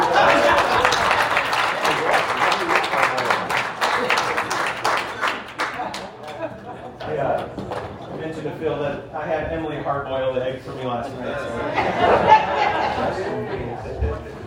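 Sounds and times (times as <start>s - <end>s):
audience applause: 0.0s - 8.0s
laughter: 0.0s - 8.0s, 11.3s - 14.4s
crowd voices: 0.0s - 14.4s
speech: 10.0s - 14.2s.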